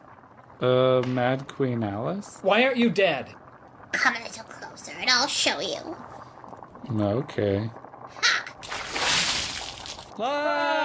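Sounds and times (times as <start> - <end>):
speech: 0.6 - 6.2, 6.9 - 8.3, 10.2 - 10.8
water splashing onto a person: 8.6 - 10.1.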